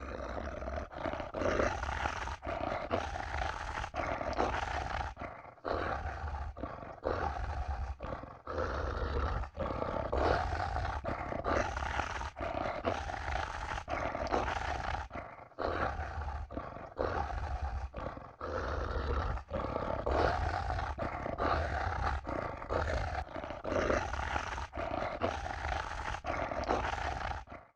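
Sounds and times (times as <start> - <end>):
monster snarling vocals: 0.0 - 27.7.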